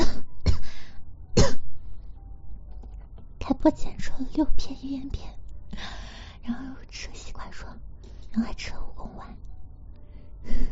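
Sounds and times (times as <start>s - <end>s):
harsh throaty coughs from an ill person: 1.4s - 1.6s
speech: 3.6s - 5.4s, 6.4s - 9.4s.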